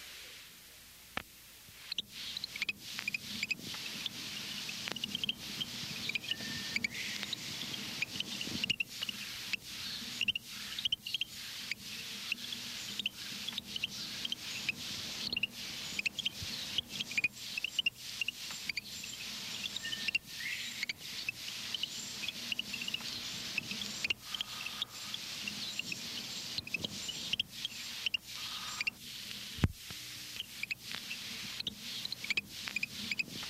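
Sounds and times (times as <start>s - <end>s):
faint steady hiss: 0.0s - 33.4s
Florida land-nesting frog giving a quiet insect-like chirping call: 1.9s - 29.0s, 30.4s - 33.3s.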